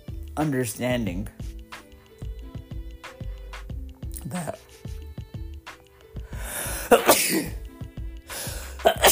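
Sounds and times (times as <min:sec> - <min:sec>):
speech: 0:00.4 - 0:01.5
person sneezing: 0:04.2 - 0:04.8, 0:06.8 - 0:07.6, 0:08.3 - 0:09.1.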